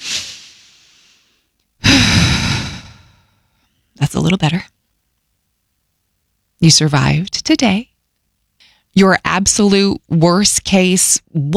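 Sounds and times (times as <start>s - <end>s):
loud forceful exhale like a sigh: 0.0s - 3.2s
person taking a long audible inhale: 0.0s - 3.2s
speech: 4.1s - 4.8s, 6.6s - 7.9s, 9.0s - 11.5s.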